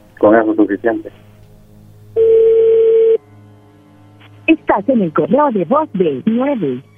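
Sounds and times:
speech: 0:00.2 - 0:01.2, 0:04.7 - 0:06.9
telephone ring tone of an unanswered call: 0:02.2 - 0:03.2.

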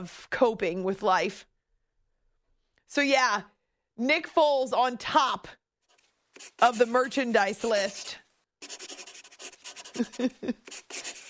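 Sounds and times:
speech: 0:00.0 - 0:01.5, 0:02.9 - 0:05.6, 0:06.4 - 0:09.1, 0:10.0 - 0:11.1
pencil scratching across paper: 0:05.8 - 0:11.2.

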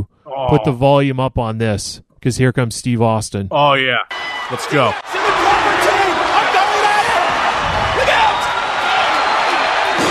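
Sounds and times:
speech: 0:00.0 - 0:05.4
arena crowd roaring: 0:04.1 - 0:10.0.

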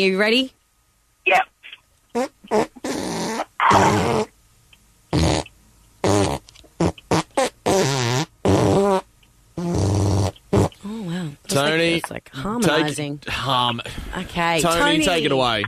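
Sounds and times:
speech: 0:00.0 - 0:00.6, 0:01.3 - 0:01.5, 0:02.1 - 0:02.7, 0:11.6 - 0:15.6
fart sounds following a pop song melody: 0:02.1 - 0:04.3, 0:05.1 - 0:10.8.

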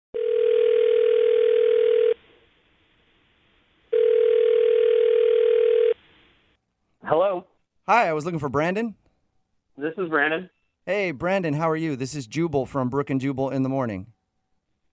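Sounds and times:
long steady phone ringback tones: 0:00.2 - 0:02.2, 0:03.9 - 0:06.0
speech: 0:07.9 - 0:09.0, 0:09.8 - 0:14.2.

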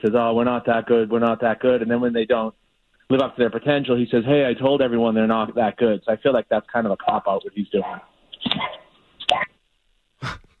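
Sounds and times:
speech: 0:00.0 - 0:09.4
dog barking to be let out: 0:08.6 - 0:08.9.

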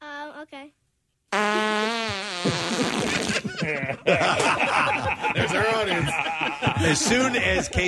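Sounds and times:
short buzzy fart sound effect: 0:01.3 - 0:03.5
laughter: 0:02.8 - 0:07.8
speech: 0:06.8 - 0:07.8.

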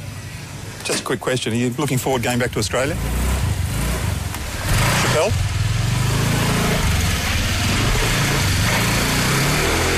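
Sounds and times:
speech: 0:00.9 - 0:03.2, 0:05.2 - 0:05.5
small scooter engine buzzing and revving as a woman rides off in Bali: 0:02.6 - 0:09.9.

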